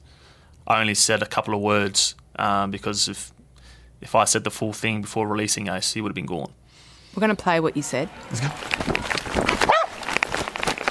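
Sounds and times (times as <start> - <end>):
speech: 0.7 - 3.4, 4.0 - 6.6, 7.2 - 9.1
rustling: 8.3 - 10.8
police dog barking during a chase: 9.6 - 10.0.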